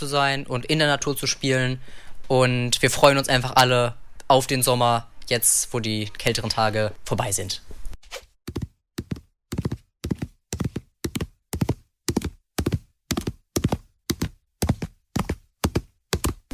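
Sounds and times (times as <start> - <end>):
speech: 0.0 - 8.6
horse hooves clip-clopping on a hard floor in a stable: 8.5 - 16.4.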